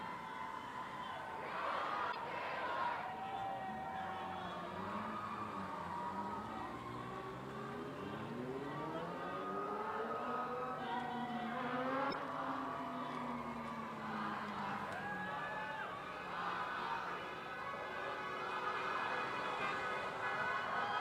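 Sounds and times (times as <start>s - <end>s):
busy street traffic: 0.0s - 20.9s
car horns honking in support of protesters: 17.7s - 20.9s.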